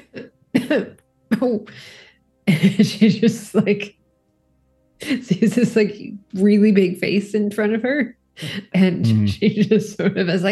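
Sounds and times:
person coughing throatily: 0.0s - 1.8s, 9.0s - 9.4s
speech: 0.7s - 4.0s, 5.0s - 10.4s.

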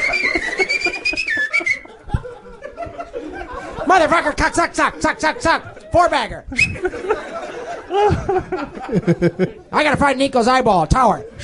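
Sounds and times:
person whistling: 0.0s - 1.9s, 6.5s - 6.9s
chuckling: 0.0s - 9.7s
speech: 3.9s - 11.4s.

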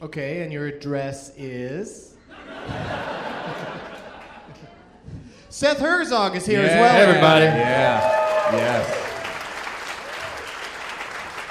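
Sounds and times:
speech: 0.0s - 3.8s, 5.5s - 9.0s
laughter: 2.3s - 5.1s, 6.5s - 9.2s
room full of people clapping: 6.6s - 11.5s.

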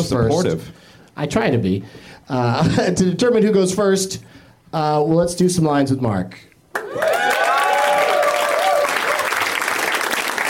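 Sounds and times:
speech: 0.0s - 7.2s
studio audience applause: 6.7s - 10.4s.

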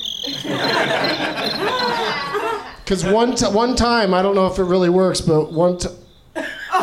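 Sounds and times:
cricket noisemaker toy chirping: 0.0s - 3.8s
laughter: 0.2s - 4.3s, 6.4s - 6.8s
speech: 2.9s - 6.0s.

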